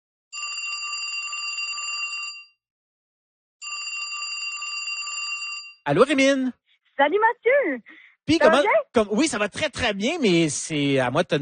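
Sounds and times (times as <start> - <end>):
telephone ringing on an outgoing call: 0.4 - 2.6, 3.6 - 5.8
speech: 5.8 - 11.4.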